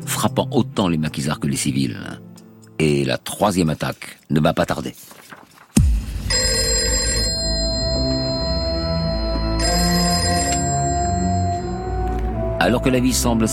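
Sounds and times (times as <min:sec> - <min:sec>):
speech: 0:00.1 - 0:05.3, 0:12.6 - 0:13.5
old-style telephone bell ringing: 0:06.3 - 0:12.3.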